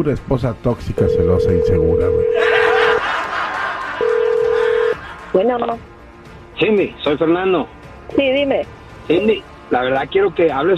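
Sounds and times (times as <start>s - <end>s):
speech: 0.0s - 2.7s, 5.3s - 5.9s, 6.6s - 10.7s
telephone tone on an outgoing call: 1.0s - 3.0s, 4.0s - 5.0s
laughter: 2.4s - 5.8s.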